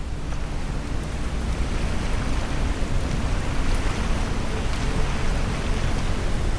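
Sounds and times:
gentle ocean waves washing ashore: 0.0s - 6.5s.

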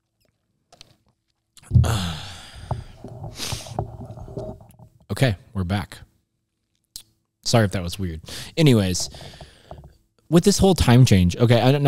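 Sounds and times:
swallow: 1.6s - 4.8s
breathy exhale: 1.8s - 3.8s, 8.3s - 8.6s
slurping sip of coffee from a mug: 2.5s - 4.7s, 8.8s - 9.9s
speech: 5.2s - 6.0s, 7.5s - 9.4s, 10.3s - 11.8s.

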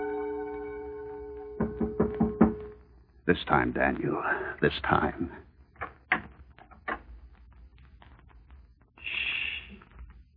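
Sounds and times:
brief steady hiss: 0.0s - 10.3s
sharp knocks on a door: 1.6s - 2.7s
speech: 3.3s - 5.4s.

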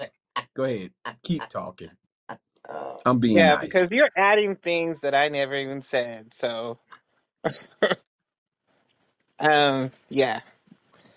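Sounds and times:
speech: 0.0s - 8.1s, 9.4s - 10.5s
person clearing throat: 7.6s - 8.0s.

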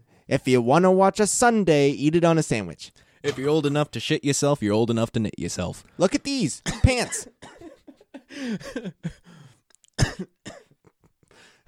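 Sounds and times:
speech: 0.3s - 7.6s, 8.3s - 9.4s, 10.0s - 10.6s
person breathing: 3.0s - 3.3s, 8.2s - 9.7s, 11.2s - 11.6s
harsh coughs: 3.2s - 3.7s, 6.6s - 9.4s, 10.0s - 10.8s.

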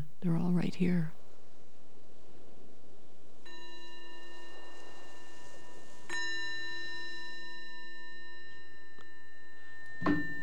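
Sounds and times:
speech: 0.2s - 1.2s
meditation bell ringing: 3.4s - 10.4s.

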